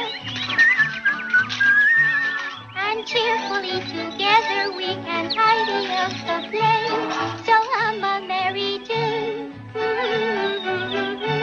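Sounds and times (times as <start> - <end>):
person whistling a short bright melody: 0.0 - 2.7
soft instrumental backing: 0.0 - 11.4.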